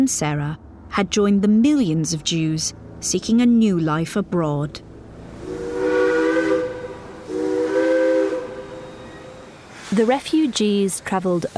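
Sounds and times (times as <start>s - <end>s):
speech: 0.0s - 4.9s, 9.9s - 11.5s
steam locomotive escaping steam hissing: 5.3s - 11.5s
steam locomotive whistle blasts: 5.4s - 9.8s.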